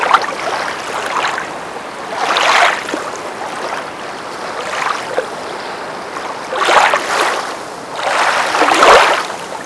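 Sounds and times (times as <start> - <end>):
subterranean water wave: 0.0 - 9.6.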